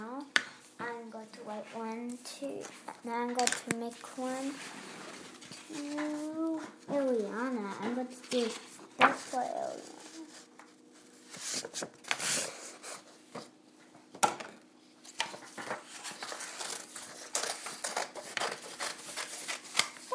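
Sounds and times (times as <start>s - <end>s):
speech: 1.6s - 5.0s, 5.7s - 10.0s
paper rustling and crinkling while being handled and folded: 2.6s - 13.5s, 15.0s - 20.1s.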